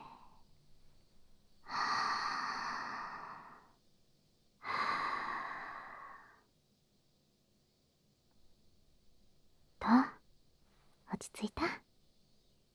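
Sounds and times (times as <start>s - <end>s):
slow deep breathing of someone calming down: 1.6s - 3.8s, 4.6s - 6.4s
speech: 11.2s - 11.8s.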